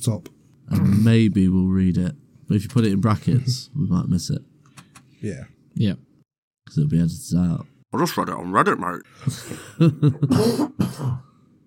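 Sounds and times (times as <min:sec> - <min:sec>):
speech: 0:00.0 - 0:04.5, 0:05.2 - 0:06.1, 0:06.7 - 0:11.2
person coughing hard in a rough fit: 0:10.2 - 0:11.3.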